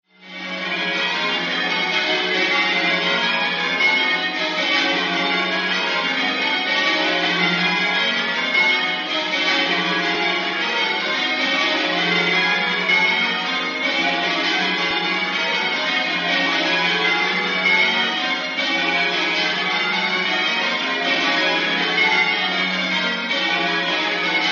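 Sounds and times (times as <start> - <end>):
church bells pealing at Canterbury: 0.2 - 24.4.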